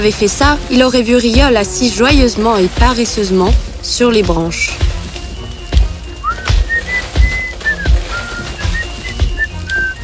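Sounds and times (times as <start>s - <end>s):
speech: 0.0s - 4.9s
person whistling a lively run of short high notes while sitting on carried branches: 4.9s - 10.0s.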